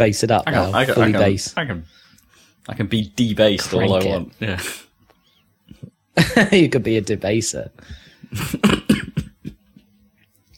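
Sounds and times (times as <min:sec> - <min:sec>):
speech: 0:00.0 - 0:02.0, 0:02.6 - 0:04.8, 0:05.8 - 0:09.2
harsh coughing: 0:08.3 - 0:09.6
raspy throat clearing: 0:08.4 - 0:09.6.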